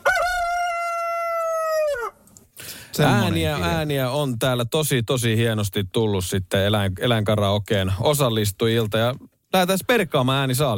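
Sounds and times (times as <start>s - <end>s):
rooster crowing: 0.0s - 2.2s
speech: 3.0s - 10.7s.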